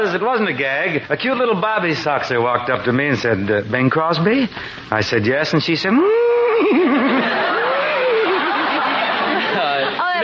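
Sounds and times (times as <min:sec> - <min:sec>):
speech: 0:00.0 - 0:07.6
human voice imitating a horse whinny: 0:06.0 - 0:08.2
audience laughter and chatter: 0:06.6 - 0:10.2.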